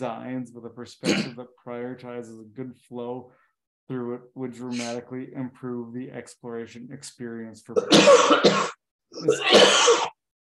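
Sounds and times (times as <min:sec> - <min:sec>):
speech: 0:00.0 - 0:10.1
person coughing: 0:01.0 - 0:01.4, 0:07.8 - 0:10.2.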